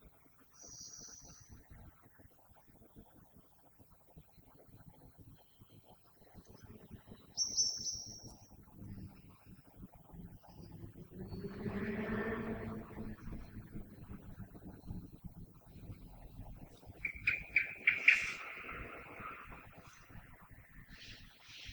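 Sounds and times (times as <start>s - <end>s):
common blackbird song: 0.6s - 1.9s, 5.1s - 9.4s, 10.3s - 21.7s
low rumbling background noise: 6.1s - 21.7s.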